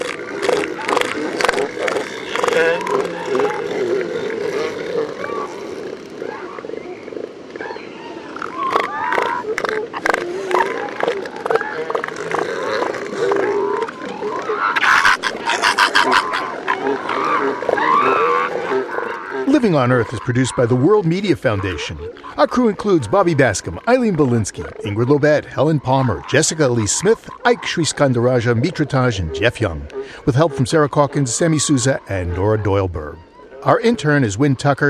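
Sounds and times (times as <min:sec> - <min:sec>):
elephant seal colony bellowing grunting and bleating: 0:00.0 - 0:34.8
laughter: 0:14.8 - 0:18.2
speech: 0:19.7 - 0:34.8.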